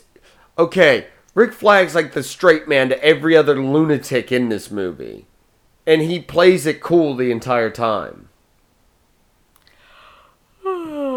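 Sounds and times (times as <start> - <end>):
speech: 0.6 - 8.3
natural yawn with voiced groan: 9.9 - 11.1.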